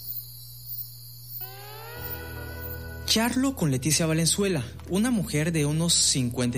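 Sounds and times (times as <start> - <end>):
frogs in a night jungle chorus: 0.0 - 3.1
crickets in a night jungle chorus: 0.0 - 3.4
rising tonal call: 1.4 - 3.6
speech: 3.1 - 6.5.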